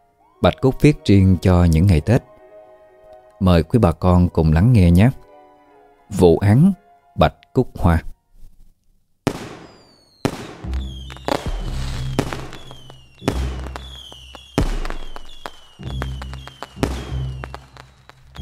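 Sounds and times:
speech: 0.4s - 2.3s, 3.4s - 5.2s, 6.1s - 8.1s
fireworks bursting in the sky at midnight on Lunar New Year's Eve: 9.2s - 18.4s.

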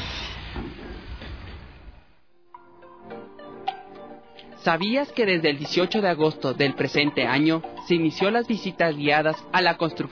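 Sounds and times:
underground metro train passing in Quito: 0.0s - 2.2s
speech: 4.6s - 10.1s.

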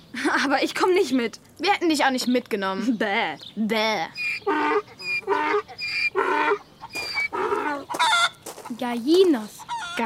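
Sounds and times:
speech: 0.4s - 6.6s, 8.7s - 10.0s
ducks quacking on a farm: 4.2s - 8.8s, 9.6s - 10.0s.

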